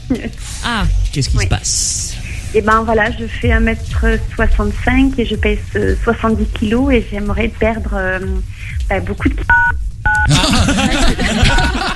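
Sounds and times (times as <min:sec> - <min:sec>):
speech: 0:00.1 - 0:11.9
telephone keypad tone from a key accidentally pressed by a cheek during a call: 0:09.5 - 0:10.3
laughter: 0:10.3 - 0:11.9.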